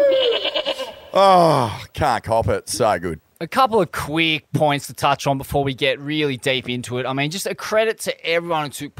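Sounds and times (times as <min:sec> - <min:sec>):
goat bleating: 0:00.1 - 0:01.2
speech: 0:01.2 - 0:08.9.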